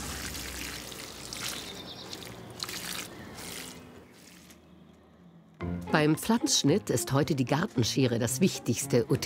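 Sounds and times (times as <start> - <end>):
water pouring from holes of a clay watering jug: 0.0 - 4.6
speech: 5.9 - 9.2.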